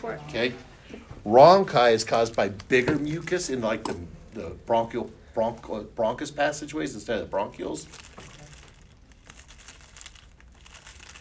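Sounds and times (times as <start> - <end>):
speech: 0.0 - 8.3
plastic cookie wrapper crinkling: 1.9 - 5.1, 7.3 - 11.2.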